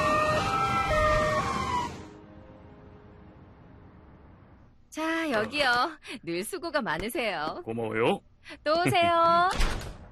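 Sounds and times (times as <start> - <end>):
fire truck siren wailing: 0.0 - 2.2
speech: 5.0 - 9.9.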